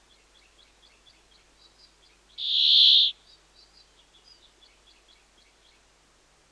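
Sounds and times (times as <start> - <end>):
Brambling song, a drawn-out wheezy buzz: 2.4 - 3.1.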